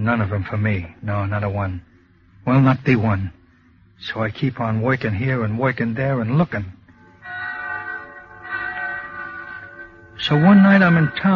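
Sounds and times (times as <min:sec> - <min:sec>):
speech: 0:00.0 - 0:03.4, 0:04.0 - 0:06.8, 0:10.2 - 0:11.3
low steady hum: 0:00.0 - 0:11.3
church bells pealing in a town: 0:07.2 - 0:11.3.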